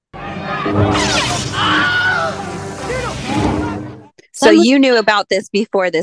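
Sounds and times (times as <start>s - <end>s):
speech: 0.7s - 1.4s, 4.4s - 6.0s
man screaming in a stock movie sound effect: 1.6s - 3.9s.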